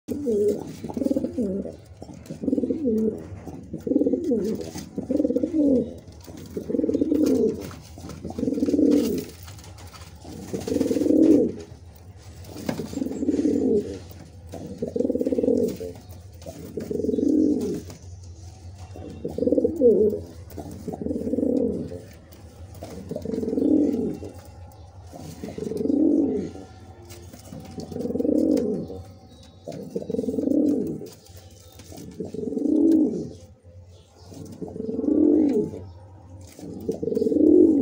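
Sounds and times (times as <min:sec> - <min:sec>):
Kaldom pigeon sounds: 0:00.1 - 0:37.7.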